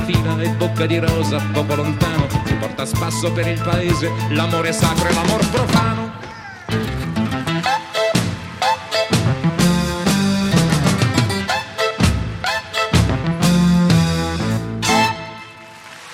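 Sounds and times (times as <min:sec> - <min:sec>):
light rhythmic backing: 0:00.0 - 0:06.2, 0:06.8 - 0:15.4
male-sounding voice singing melodic lines in Italian: 0:00.0 - 0:06.9
strummed accompaniment: 0:00.0 - 0:15.5
speech: 0:00.2 - 0:06.8.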